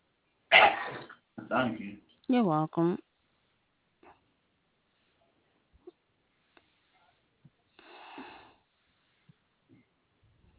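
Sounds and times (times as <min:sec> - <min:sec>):
person sneezing: 0:00.5 - 0:01.1
speech: 0:01.5 - 0:03.1.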